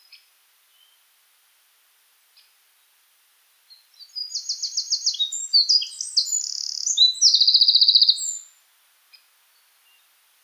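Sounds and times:
Eurasian wren singing: 0:04.2 - 0:08.5.

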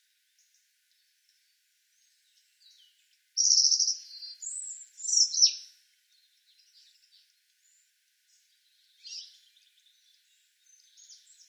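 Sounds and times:
Erithacus rubecula European robin singing: 0:02.2 - 0:07.8, 0:08.6 - 0:11.4.

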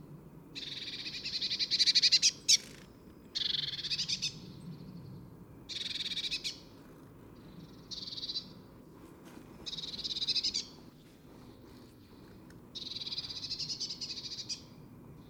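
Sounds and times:
Eurasian blue tit Cyanistes caeruleus scratchy buzzy churring: 0:00.6 - 0:04.4, 0:05.7 - 0:06.8, 0:07.4 - 0:08.6, 0:09.6 - 0:10.8, 0:12.0 - 0:14.8.

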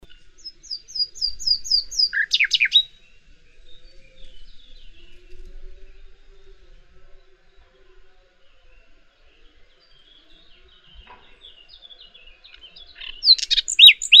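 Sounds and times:
common nightingale Luscinia megarhynchos song: 0:00.0 - 0:14.1.

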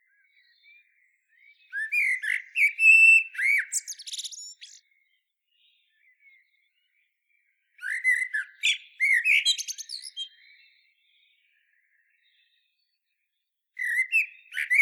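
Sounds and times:
common blackbird Turdus merula song: 0:00.0 - 0:14.8.

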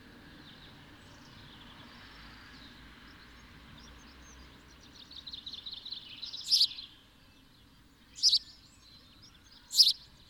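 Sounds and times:
house sparrow chirp: 0:01.1 - 0:10.2
Passer domesticus twittering: 0:04.8 - 0:06.9, 0:08.0 - 0:10.2.

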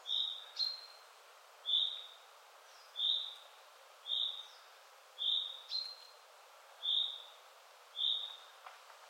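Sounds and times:
common chaffinch calls, Fringilla coelebs: 0:00.0 - 0:01.0, 0:01.6 - 0:06.1, 0:06.8 - 0:07.4, 0:08.0 - 0:08.5
light background hiss: 0:00.0 - 0:09.0.

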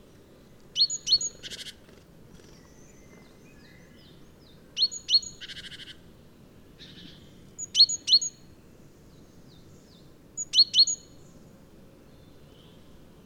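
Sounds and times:
great tit calls: 0:00.8 - 0:01.8, 0:02.4 - 0:06.0, 0:06.8 - 0:08.5, 0:09.2 - 0:11.4.

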